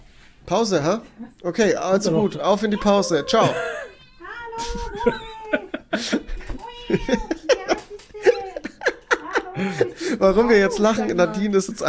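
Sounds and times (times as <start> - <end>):
speech: 0.5 - 3.8, 4.6 - 5.2, 10.2 - 11.8
pet cat meowing: 2.0 - 7.4
laughter: 3.1 - 3.9, 4.6 - 11.6.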